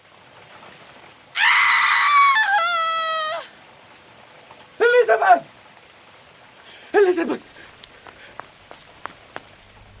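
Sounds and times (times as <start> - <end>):
woman's loud piercing scream: 1.4 - 3.5
speech: 7.2 - 7.6.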